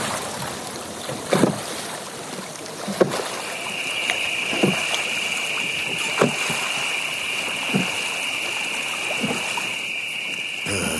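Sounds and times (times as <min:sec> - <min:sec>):
rowboat oars dipping and splashing in calm water of the Neva river: 0:00.0 - 0:10.9
thin continuous insect-like whine in the night air: 0:03.4 - 0:10.9.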